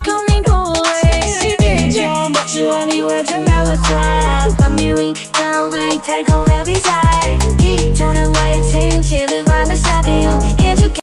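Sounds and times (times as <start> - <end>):
AI-generated hip hop track with bass-heavy beat and rapping: 0.0 - 11.0.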